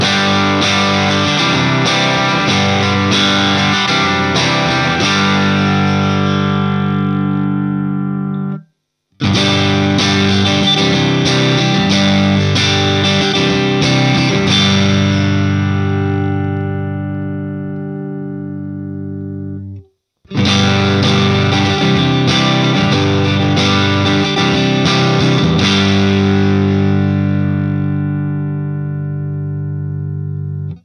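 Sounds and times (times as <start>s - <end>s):
electric guitar with Sheptone Tele pickups through JTM45 amplifier: 0.0s - 8.6s, 9.2s - 30.8s.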